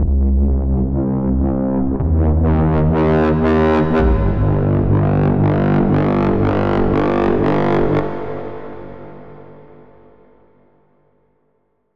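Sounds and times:
dry bass: 0:00.0 - 0:09.0.

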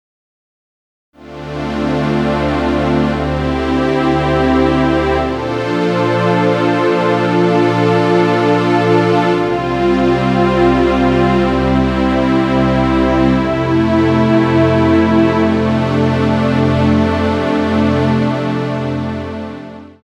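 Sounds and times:
synth pad: 0:01.2 - 0:20.0.

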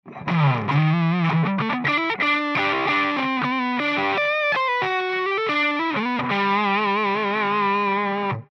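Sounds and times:
distorted split-tone electric guitar: 0:00.0 - 0:08.5.

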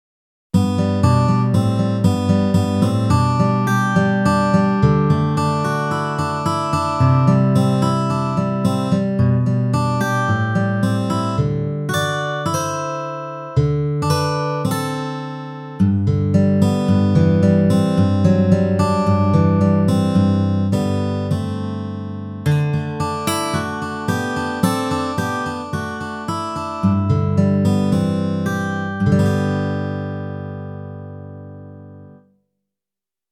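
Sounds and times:
Kawai CA501 ballad guitar: 0:00.6 - 0:32.2.

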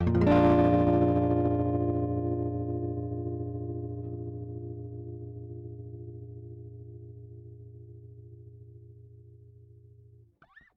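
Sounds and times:
distorted guitar strum: 0:00.0 - 0:08.0.

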